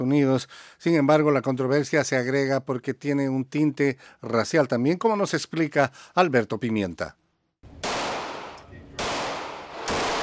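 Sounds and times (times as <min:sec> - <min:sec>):
speech: 0:00.0 - 0:07.2
gunshots at an outdoor shooting range in Summerville South Carolina: 0:07.7 - 0:10.2.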